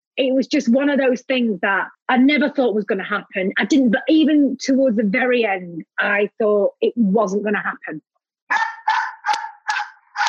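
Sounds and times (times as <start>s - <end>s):
speech: 0.2s - 8.7s
dog barking with a howling drawn-out tone: 8.5s - 10.2s.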